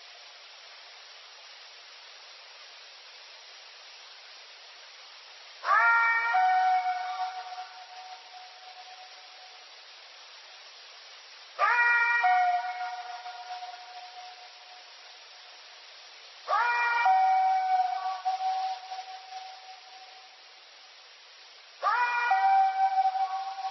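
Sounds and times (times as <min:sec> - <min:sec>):
eerie unexplained howl with wavering harmonic tone: 0:05.6 - 0:09.1, 0:11.6 - 0:14.6, 0:16.5 - 0:20.0, 0:21.8 - 0:23.6.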